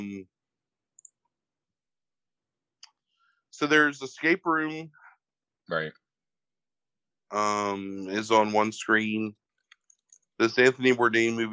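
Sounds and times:
speech: 0:03.6 - 0:05.0, 0:05.7 - 0:06.0, 0:07.3 - 0:09.4, 0:10.4 - 0:11.5
computer mouse clicking: 0:09.6 - 0:10.3.

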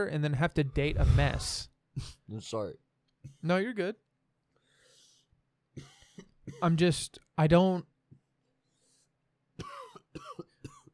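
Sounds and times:
speech: 0:00.0 - 0:04.0, 0:05.8 - 0:07.9
person coughing harshly: 0:05.8 - 0:06.8, 0:09.6 - 0:10.9.

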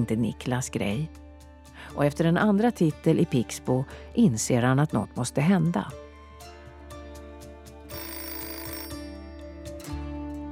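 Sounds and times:
speech: 0:00.0 - 0:01.2, 0:01.8 - 0:06.5
telephone ringing for an incoming call: 0:07.9 - 0:09.4.

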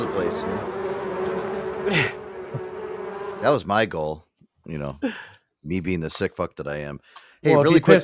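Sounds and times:
swarm of bees buzzing: 0:00.0 - 0:03.6
speech: 0:01.8 - 0:02.7, 0:03.4 - 0:08.0.

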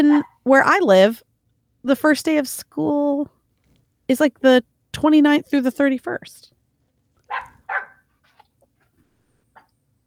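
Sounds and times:
dog that needs to go out barking and yipping: 0:00.0 - 0:00.4, 0:07.3 - 0:08.1
speech: 0:00.0 - 0:03.4, 0:04.1 - 0:06.5.

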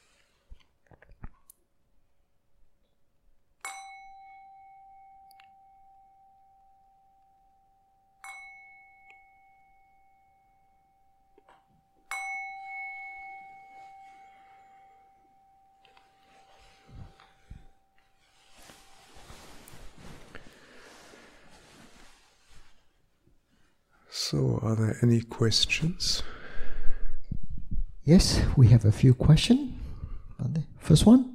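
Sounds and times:
meditation bell ringing: 0:03.6 - 0:20.2
soft rustling and shuffling in the room: 0:13.5 - 0:24.0
speech: 0:24.3 - 0:26.4, 0:28.0 - 0:29.8, 0:30.5 - 0:31.3.

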